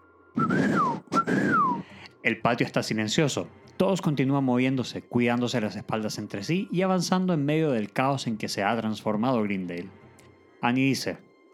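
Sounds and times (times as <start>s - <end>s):
person whistling signal calls: 0.4s - 2.1s
speech: 2.2s - 10.0s, 10.6s - 11.3s.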